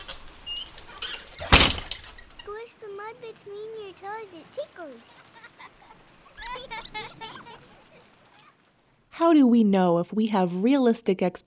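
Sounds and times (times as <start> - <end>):
door pushed shut with a sliding rustle and firm thud: 0.0 - 2.3
speech: 3.2 - 5.2, 6.6 - 7.8, 9.2 - 11.4
laughter: 4.6 - 8.6.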